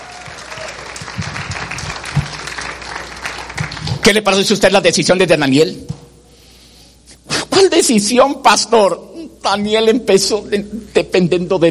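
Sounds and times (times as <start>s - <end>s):
audience applauding: 0.0s - 4.2s
speech: 4.0s - 5.9s, 7.9s - 11.7s.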